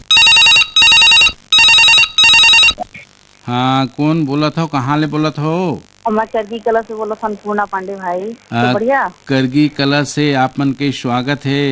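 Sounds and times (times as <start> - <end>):
telephone bell ringing in double rings: 0.0 - 2.8
speech: 3.5 - 11.7.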